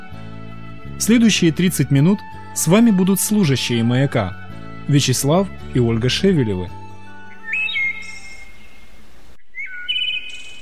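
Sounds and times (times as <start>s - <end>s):
speech: 1.0s - 6.8s
bird in summer plumage chirping with cheerful whistling calls: 7.3s - 10.5s.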